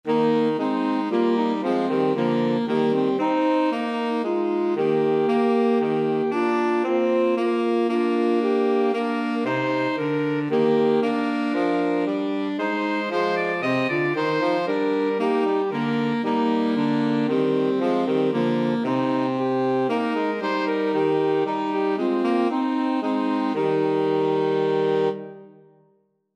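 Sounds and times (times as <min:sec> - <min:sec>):
saxophone trio of two alto saxes and tenor sax: 0:00.1 - 0:25.6.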